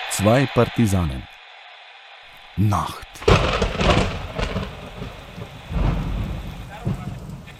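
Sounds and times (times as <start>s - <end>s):
speech: 0.2s - 1.3s, 2.6s - 3.5s
deep rolls of thunder: 3.2s - 7.5s
steady rain: 3.2s - 7.5s.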